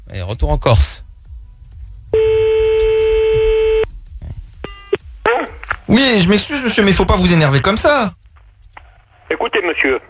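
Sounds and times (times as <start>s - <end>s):
speech: 0.1s - 1.0s, 6.0s - 8.2s, 9.7s - 10.0s
telephone line tone while calling back: 2.2s - 3.9s.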